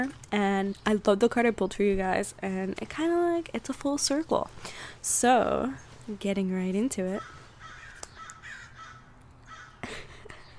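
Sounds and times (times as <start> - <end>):
speech: 0.0 - 7.4
crows cawing: 7.2 - 9.8.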